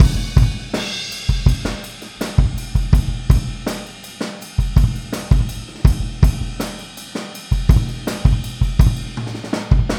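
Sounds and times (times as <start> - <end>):
boogaloo kick drum fill: 0.0 - 3.7, 4.6 - 6.6, 7.5 - 9.1.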